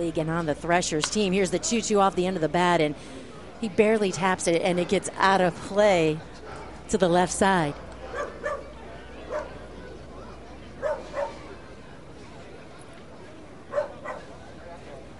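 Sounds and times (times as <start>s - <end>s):
speech: 0.0s - 7.8s
steady crowd hum at a minor-league baseball game: 0.0s - 15.1s
dogs barking at a ballpark during a minor-league baseball game: 8.0s - 9.6s, 10.8s - 11.5s, 13.7s - 14.3s.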